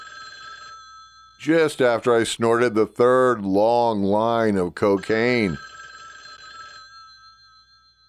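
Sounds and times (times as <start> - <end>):
telephone bell ringing in a shack: 0.0 - 1.5, 5.0 - 8.0
speech: 1.4 - 5.7.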